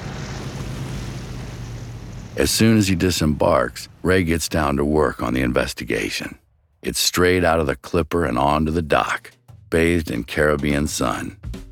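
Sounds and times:
rushing water and wind: 0:00.0 - 0:04.0
engine drone: 0:00.0 - 0:07.0
speech: 0:02.4 - 0:11.6.

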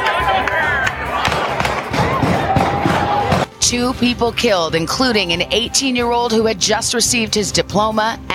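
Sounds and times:
people shouting: 0:00.0 - 0:03.5
crowd commotion: 0:00.0 - 0:05.4
gunfire: 0:01.2 - 0:03.5
speech: 0:03.7 - 0:08.3.

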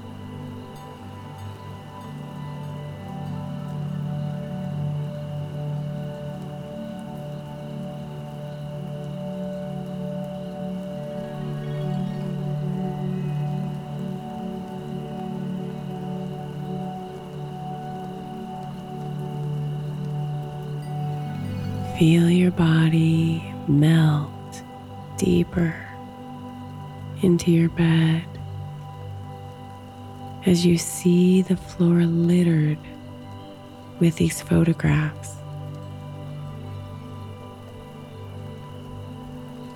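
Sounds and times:
rain pattering onto a surface: 0:00.0 - 0:39.7
speech: 0:22.0 - 0:24.3, 0:25.2 - 0:25.8, 0:27.2 - 0:28.3, 0:30.4 - 0:32.9, 0:34.0 - 0:35.4.

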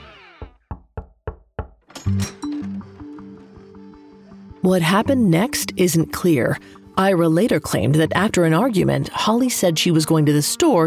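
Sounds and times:
firm knocks on a door: 0:00.4 - 0:01.9
speech: 0:02.1 - 0:02.4, 0:04.6 - 0:10.8
tense sustained music: 0:02.4 - 0:10.8.

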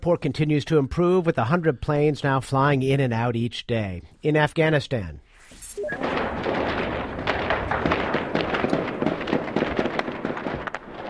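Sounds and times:
speech: 0:00.0 - 0:05.2
sustained rumbling background: 0:05.8 - 0:11.0
gunfire echoing in city streets during an attack by armed militants: 0:06.0 - 0:11.0.

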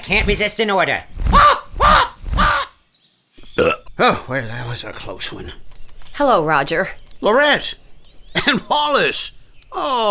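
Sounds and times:
speech: 0:00.0 - 0:02.0, 0:04.0 - 0:07.8, 0:08.4 - 0:10.0
bird cawing: 0:01.2 - 0:02.9.

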